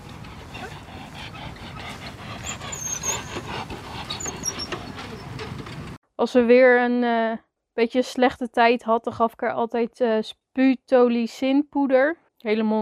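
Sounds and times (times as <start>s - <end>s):
mare with labored wheezing panting breath: 0.0s - 5.7s
speech: 6.2s - 12.7s.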